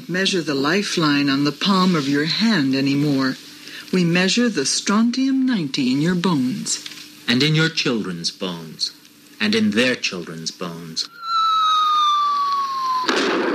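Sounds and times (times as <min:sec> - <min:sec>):
speech: 0:00.1 - 0:11.2
falling whistle-like tone: 0:11.1 - 0:13.4.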